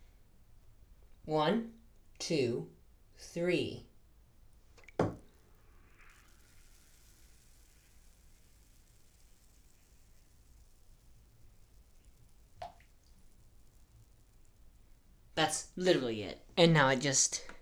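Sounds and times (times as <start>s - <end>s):
faint water drip: 0.0s - 15.8s
low hiss: 0.0s - 17.5s
speech: 1.3s - 3.9s, 15.5s - 17.5s
bath bomb splashing into a bathtub full of water: 4.7s - 14.9s.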